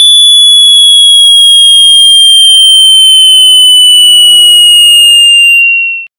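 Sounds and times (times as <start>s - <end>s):
loud annoying sound: 0.2s - 5.7s.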